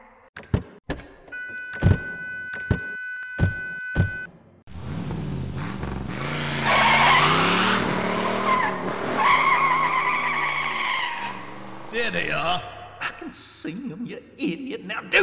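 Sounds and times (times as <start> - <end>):
car engine roaring as a car speeds away: 4.7 - 13.0
car tires squealing: 4.8 - 12.9
speech: 13.3 - 15.2.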